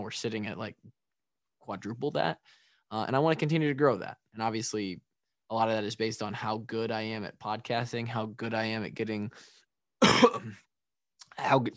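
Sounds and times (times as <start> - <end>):
speech: 0.0 - 1.0, 1.6 - 10.7, 11.4 - 11.7
person coughing into a microphone: 10.0 - 10.7.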